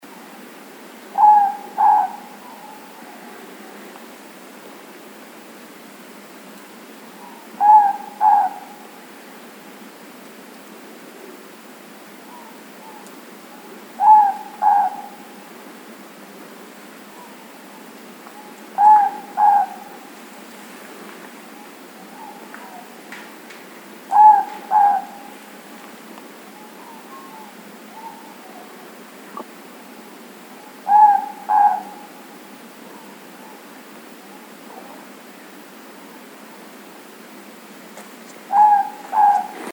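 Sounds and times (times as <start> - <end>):
morepork owl calling: 1.1 - 3.8, 7.1 - 9.0, 12.2 - 15.4, 17.1 - 20.1, 21.5 - 23.0, 24.1 - 25.6, 26.5 - 35.1, 38.4 - 39.7.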